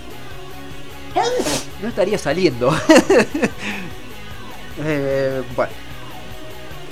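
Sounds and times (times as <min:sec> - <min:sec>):
person sneezing: 0:01.2 - 0:01.8
speech: 0:01.2 - 0:04.0, 0:04.8 - 0:05.8
laughter: 0:02.5 - 0:04.0.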